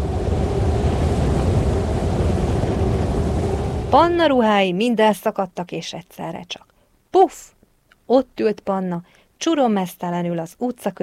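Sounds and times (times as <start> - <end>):
strong wind roaring: 0.0 - 4.6
speech: 3.9 - 11.0.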